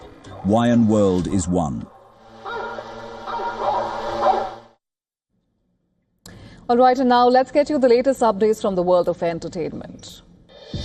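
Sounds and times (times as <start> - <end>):
speech: 0.4 - 2.0, 6.7 - 10.8
hunting dogs barking and baying: 2.0 - 4.8.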